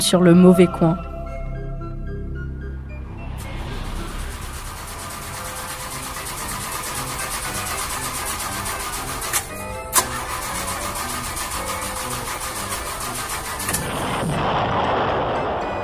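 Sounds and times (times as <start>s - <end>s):
speech: 0.0s - 1.1s
low rumble: 0.0s - 9.0s, 13.8s - 15.8s
broken-down car engine cranking and sputtering without catching: 3.6s - 14.4s.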